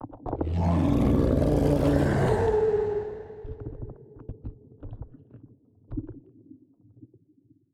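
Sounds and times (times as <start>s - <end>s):
space dragon attack: 0.4s - 3.5s.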